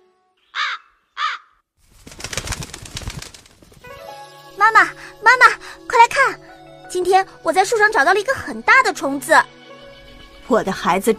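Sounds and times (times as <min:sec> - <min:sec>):
crow giving loud harsh caws: 0:00.5 - 0:01.6
wings flapping and rustling: 0:01.8 - 0:04.1
speech: 0:04.6 - 0:09.5, 0:10.5 - 0:11.1.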